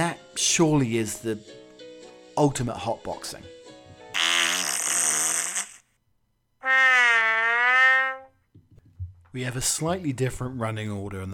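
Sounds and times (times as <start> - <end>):
speech: 0.4 - 1.6, 2.4 - 3.6, 9.3 - 11.3
loud drawn-out buzzy farts: 4.2 - 5.9, 6.6 - 8.4.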